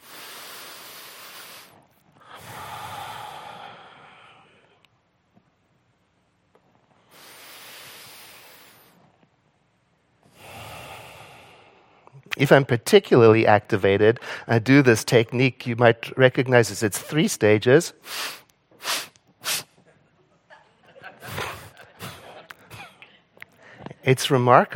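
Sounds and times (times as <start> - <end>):
person taking slow deep nasal breaths: 0.0 - 4.8, 7.1 - 9.0, 10.3 - 12.1, 14.2 - 14.5
speech: 12.4 - 19.0, 24.1 - 24.7.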